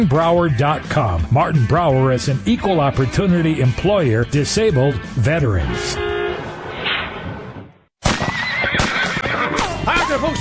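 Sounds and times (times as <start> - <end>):
speech: 0.0 - 6.1
horse whinnying loudly with a shrill wavering neigh: 8.2 - 10.2.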